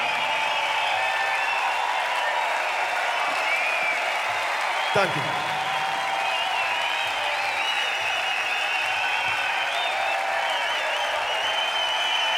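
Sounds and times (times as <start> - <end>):
sustained applause from a large indoor theatre audience: 0.0 - 12.3
speech: 4.9 - 5.6.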